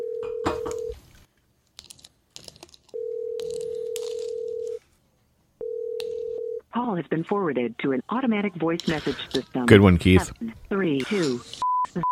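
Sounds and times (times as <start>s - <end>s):
phone dial tone: 0.0s - 1.0s, 2.9s - 4.8s, 5.6s - 6.6s
speech: 6.9s - 12.0s.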